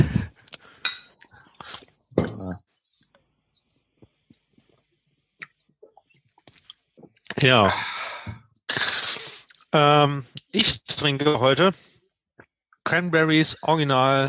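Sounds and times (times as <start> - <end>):
glasses of ginger beer clinking together in a toast: 0.8 - 1.2
speech: 7.4 - 7.9, 9.7 - 11.9, 12.9 - 14.2.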